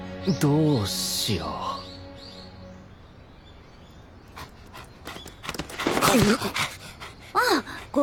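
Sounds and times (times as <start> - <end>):
speech: 0.2 - 1.8, 6.2 - 6.7
old dog panting: 4.3 - 8.0.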